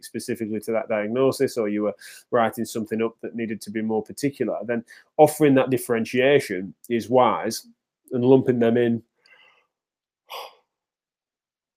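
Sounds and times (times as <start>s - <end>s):
speech: 0.0s - 9.1s, 10.3s - 10.5s
faint soft breath: 2.0s - 2.3s, 4.8s - 5.2s, 9.2s - 9.7s
short breathy yawn: 10.3s - 10.7s.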